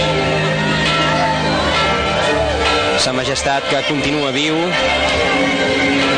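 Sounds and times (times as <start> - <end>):
dense crowd at a Carnival celebration shouting and screaming: 0.0 - 6.1
speech: 3.0 - 6.1.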